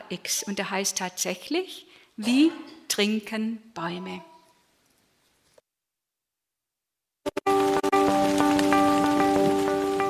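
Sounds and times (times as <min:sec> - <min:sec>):
speech: 0:00.1 - 0:04.3
heavy rain pouring in a forest: 0:07.4 - 0:10.0.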